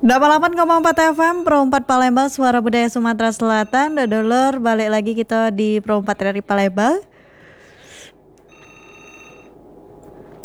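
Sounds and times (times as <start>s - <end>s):
telephone ringing with an incoming listener call to a radio studio: 0.0s - 6.2s, 8.2s - 10.3s
speech: 0.0s - 7.1s
low noise: 0.0s - 10.4s.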